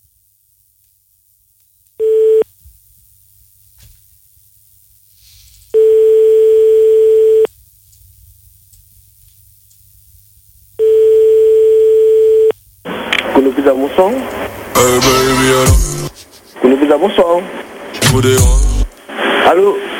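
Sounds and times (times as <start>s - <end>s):
telephone line tone after dialing a pizzeria's number: 2.0s - 2.4s, 5.8s - 7.5s, 10.8s - 12.5s
quiet telephone line hiss: 2.0s - 2.5s, 5.7s - 7.5s, 10.8s - 16.1s
speech: 13.7s - 15.9s, 16.7s - 18.6s, 19.5s - 19.9s.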